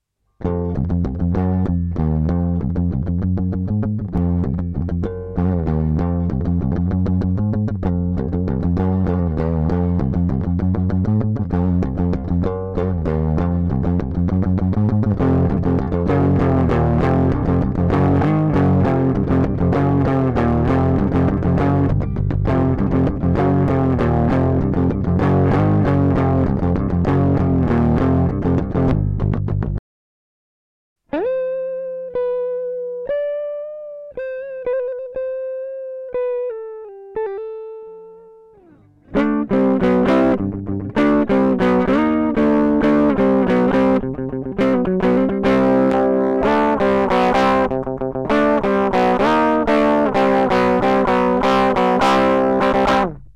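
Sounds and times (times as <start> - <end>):
unprocessed guitar playing: 0.4 - 29.8, 31.1 - 53.3.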